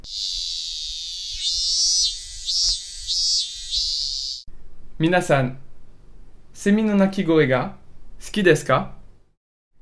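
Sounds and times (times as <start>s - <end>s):
speech: 0.0s - 0.3s, 5.0s - 5.6s, 6.6s - 9.0s
cicadas chirping: 0.0s - 4.5s.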